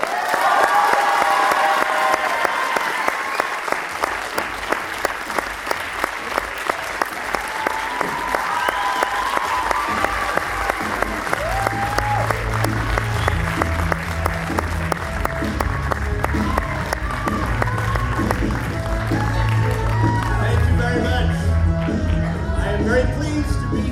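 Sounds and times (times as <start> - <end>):
large crowd applause and cheering welcoming an actor on stage: 0.0 - 23.8.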